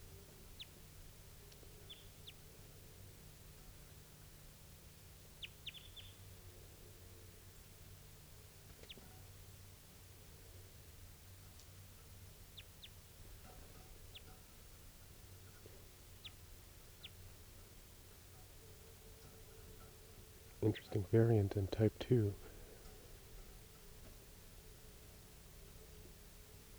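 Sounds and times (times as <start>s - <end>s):
steady broadband hiss: 19.7s - 26.7s
speech: 20.6s - 22.5s
short sharp calls of a wild bird: 20.6s - 22.7s.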